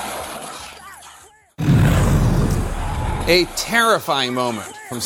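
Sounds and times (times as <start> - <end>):
car engine roaring with road noise: 1.6 - 3.6
speech: 3.3 - 5.0.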